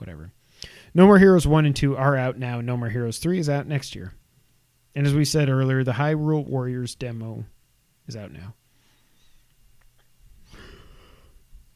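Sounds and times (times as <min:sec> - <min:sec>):
speech: 0:00.0 - 0:04.2, 0:05.0 - 0:07.5, 0:08.1 - 0:08.6
person yawning: 0:10.5 - 0:11.4.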